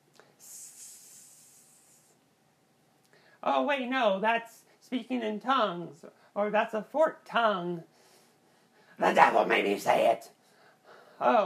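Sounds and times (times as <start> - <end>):
person hissing like a snake through their teeth: 0.4 - 2.2
speech: 3.4 - 7.9, 9.0 - 10.4, 11.2 - 11.4.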